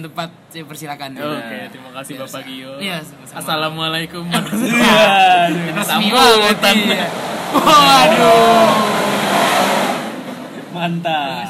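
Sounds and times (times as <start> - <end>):
speech: 0.0 - 9.1, 10.8 - 11.4
laughter: 4.3 - 9.7
trucks speeding past outside: 4.6 - 11.0.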